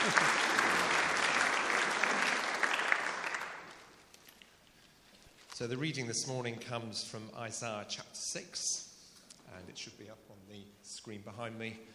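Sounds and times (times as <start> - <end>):
church audience applauding: 0.0 - 3.9
speech: 5.6 - 8.9, 9.5 - 11.9.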